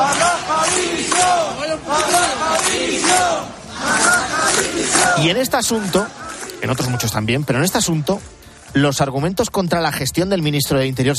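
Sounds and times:
large crowd chanting in unison at a protest rally: 0:00.0 - 0:07.0
speech: 0:05.2 - 0:11.1.

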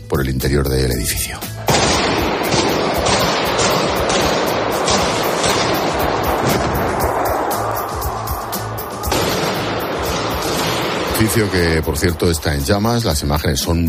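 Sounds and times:
speech: 0:00.1 - 0:02.2, 0:11.2 - 0:13.8
dense roaring background: 0:01.6 - 0:13.8
assault rifle gunfire: 0:01.7 - 0:07.0, 0:09.1 - 0:11.5.

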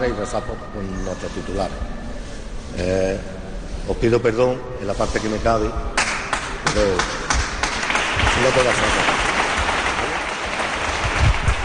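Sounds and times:
speech: 0:00.0 - 0:02.0, 0:02.8 - 0:05.9, 0:06.6 - 0:07.2, 0:08.4 - 0:09.2
applause in a church from members of a religious brotherhood: 0:07.6 - 0:11.6.

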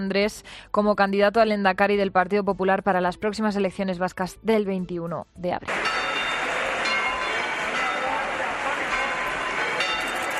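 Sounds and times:
speech: 0:00.0 - 0:06.1
church bells pealing in full swing: 0:05.7 - 0:10.3.

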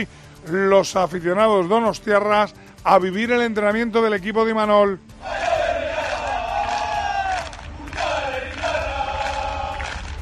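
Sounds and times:
speech: 0:00.0 - 0:05.4
football fans cheering at a team training session: 0:05.1 - 0:10.2.

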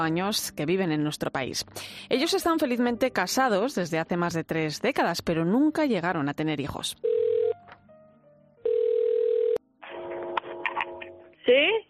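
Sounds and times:
speech: 0:00.0 - 0:07.1, 0:11.5 - 0:11.7
telephone ringback tones: 0:07.0 - 0:07.6, 0:08.6 - 0:11.2.

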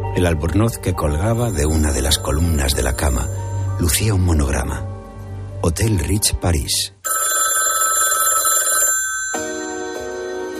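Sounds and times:
speech: 0:00.2 - 0:04.9, 0:05.6 - 0:07.0
telephone ringing loudly in a luxurious hotel room in Paris: 0:01.4 - 0:03.5, 0:07.1 - 0:10.2.

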